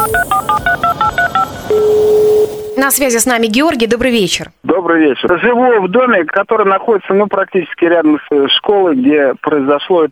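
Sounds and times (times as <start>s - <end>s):
telephone keypad two-note dialing beeps: 0.0s - 3.0s
speech: 2.9s - 10.0s.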